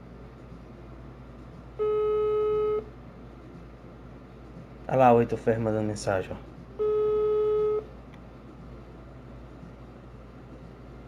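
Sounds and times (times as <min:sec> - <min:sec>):
low hum: 0:00.0 - 0:11.0
ringback tone from an outgoing phone call: 0:01.8 - 0:02.8, 0:06.8 - 0:07.8
speech: 0:04.9 - 0:06.5.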